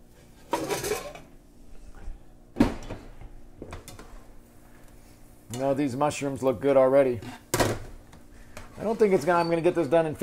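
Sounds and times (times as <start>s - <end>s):
metal pot lids clanking and scraping in a home kitchen: 0.5s - 1.2s
speech: 5.6s - 7.4s, 8.8s - 10.2s.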